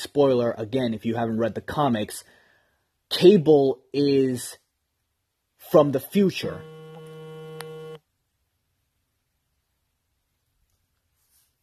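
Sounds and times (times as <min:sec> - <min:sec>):
speech: 0:00.0 - 0:02.4, 0:03.1 - 0:04.6, 0:05.6 - 0:06.8
noise: 0:00.0 - 0:11.6
phone beeping: 0:06.5 - 0:08.0.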